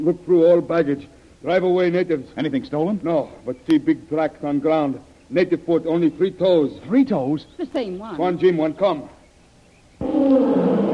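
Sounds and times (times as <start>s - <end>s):
speech: 0.0s - 9.2s
tiger roaring: 10.0s - 10.9s.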